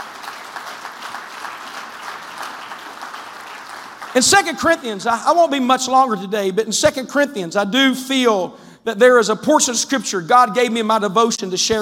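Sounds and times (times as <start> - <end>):
audience applause: 0.0 - 4.8
speech: 4.2 - 11.8.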